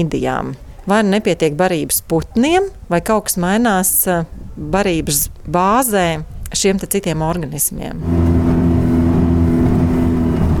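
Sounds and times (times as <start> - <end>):
speech: 0.0 - 8.5
motorboat engine drone heading out to sea in the early morning: 7.9 - 10.5.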